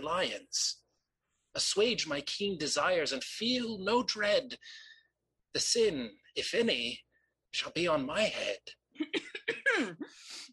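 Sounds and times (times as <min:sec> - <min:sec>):
speech: 0:00.0 - 0:00.8, 0:01.5 - 0:04.9, 0:05.5 - 0:10.5
harsh coughing: 0:09.0 - 0:10.5.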